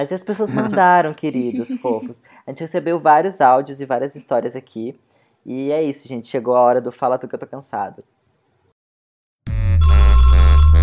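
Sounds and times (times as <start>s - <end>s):
speech: 0.0s - 8.2s
laughter: 0.5s - 2.2s
electronic telephone ringtone for an incoming collect call: 9.8s - 10.8s.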